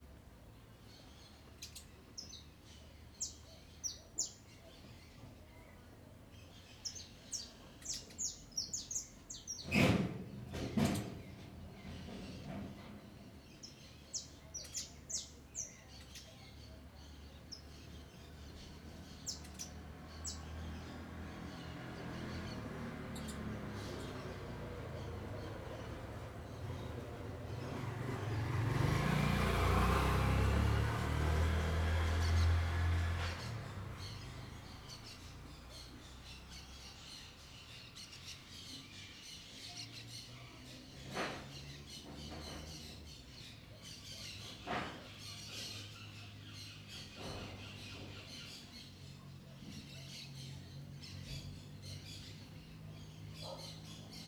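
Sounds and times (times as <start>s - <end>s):
birds in a small-town city backyard by day: 0.0s - 54.2s
motorcycle: 17.0s - 38.6s, 39.2s - 54.2s.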